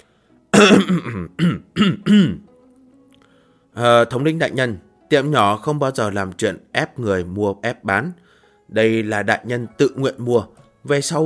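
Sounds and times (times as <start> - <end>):
speech: 0.6 - 2.4, 3.8 - 11.2
man clearing his throat: 0.6 - 2.5.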